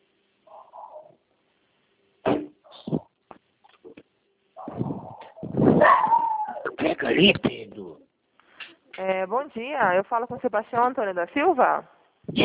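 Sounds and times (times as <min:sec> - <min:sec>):
dog barking and whimpering: 0:04.6 - 0:06.8
speech: 0:07.0 - 0:07.8, 0:09.0 - 0:12.4.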